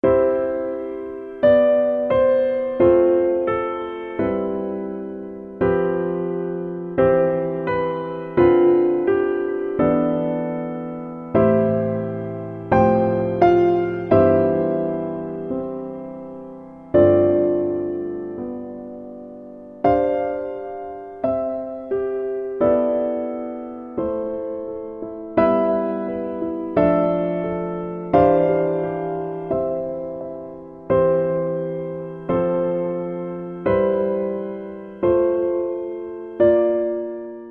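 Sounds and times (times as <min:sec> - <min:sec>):
low piano playing a hymn: 0:00.0 - 0:37.4.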